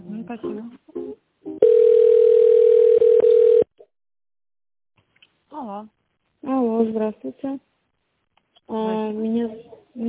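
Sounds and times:
speech: 0:00.3 - 0:00.8, 0:05.6 - 0:06.0, 0:06.8 - 0:07.7, 0:08.7 - 0:10.0
telephone line tone during a call transfer: 0:01.6 - 0:03.7.

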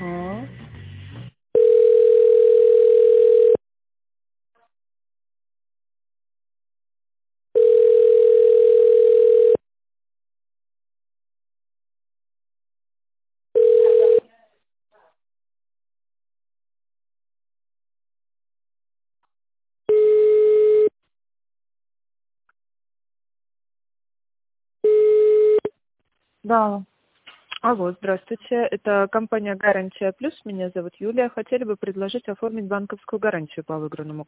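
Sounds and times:
telephone line tones during a call transfer: 0:01.6 - 0:03.6, 0:07.6 - 0:09.6, 0:13.6 - 0:14.2, 0:19.9 - 0:20.9, 0:24.9 - 0:25.7
speech: 0:26.5 - 0:26.9, 0:27.6 - 0:34.2.

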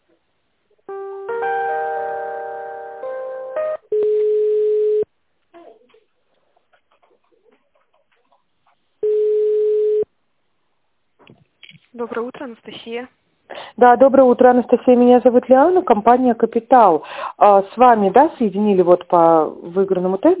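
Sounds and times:
layered multi-tone telephone line signal: 0:04.0 - 0:05.1, 0:09.0 - 0:10.0
speech: 0:12.1 - 0:13.2, 0:13.8 - 0:20.3.

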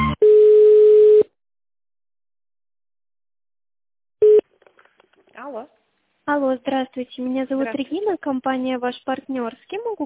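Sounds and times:
steady phone line beep during call transfer: 0:00.2 - 0:01.3, 0:04.2 - 0:04.4
speech: 0:06.5 - 0:10.0.

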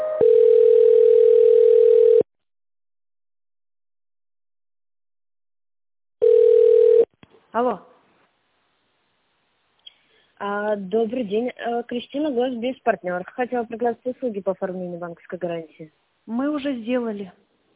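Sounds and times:
loud steady telephone line tone while a call is transferred: 0:00.2 - 0:02.3, 0:06.2 - 0:07.1
stepped chord-like electronic telephone tones while a call is transferred: 0:00.2 - 0:02.3
speech: 0:07.6 - 0:07.9, 0:10.7 - 0:17.5.

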